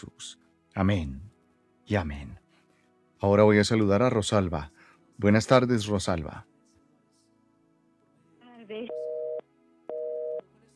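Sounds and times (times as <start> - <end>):
speech: 0.0 - 1.3, 1.9 - 2.4, 3.2 - 6.5
telephone busy signal after a dropped call: 8.9 - 10.4.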